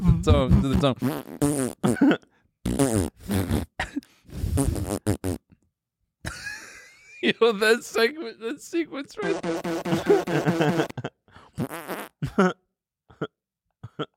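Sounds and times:
speech: 0.2s - 3.5s, 7.4s - 12.6s
person imitating fart noises with the mouth: 0.5s - 5.6s, 9.2s - 11.0s, 11.6s - 12.2s
laughter: 6.3s - 11.2s.

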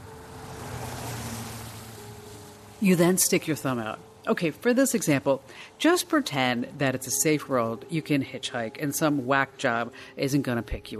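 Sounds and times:
vehicle rushing past with low engine hum: 0.0s - 3.4s
speech: 2.8s - 10.9s.

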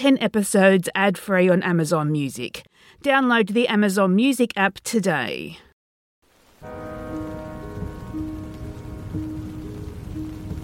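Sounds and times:
speech: 0.0s - 5.7s
drizzling rain pattering on canvas top of a driving Jeep: 6.2s - 10.6s.

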